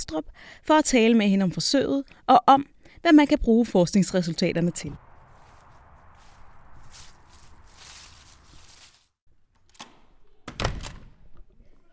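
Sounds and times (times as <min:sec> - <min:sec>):
speech: 0:00.0 - 0:05.0
rustling outdoor ambience on an autumn day in October: 0:02.7 - 0:09.2
footsteps crunching and shuffling outdoors on an autumn day: 0:05.0 - 0:09.2
door shutting at a university hospital for large animals: 0:09.5 - 0:11.2.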